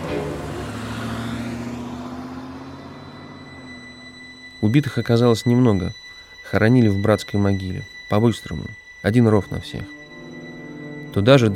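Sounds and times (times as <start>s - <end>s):
car engine humming as the car pulls off and drives away: 0.0s - 4.8s
speech: 4.6s - 10.0s, 11.1s - 11.5s.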